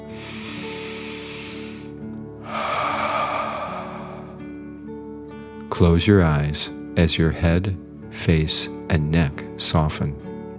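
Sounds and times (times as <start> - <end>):
deep breath in and out during a relaxation exercise: 0.0 - 5.6
speech: 5.8 - 10.3.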